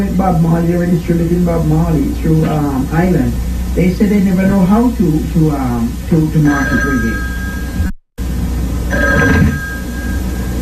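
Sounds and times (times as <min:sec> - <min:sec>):
speech: 0:00.0 - 0:07.3
steady hiss: 0:00.0 - 0:07.7
telephone ringing in a trilling burst: 0:06.4 - 0:07.9, 0:08.9 - 0:10.6.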